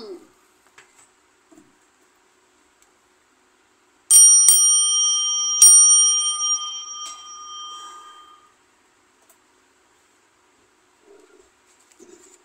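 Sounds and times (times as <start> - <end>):
bell ringing: 4.1 - 8.5.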